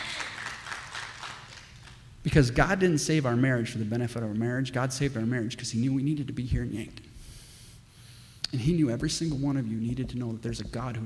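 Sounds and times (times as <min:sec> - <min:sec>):
audience applause: 0:00.0 - 0:02.0
speech: 0:02.2 - 0:07.1, 0:08.5 - 0:11.0.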